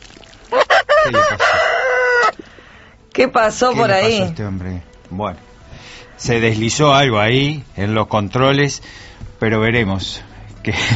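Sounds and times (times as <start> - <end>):
rooster crowing: 0.5 - 2.4
speech: 3.2 - 10.9.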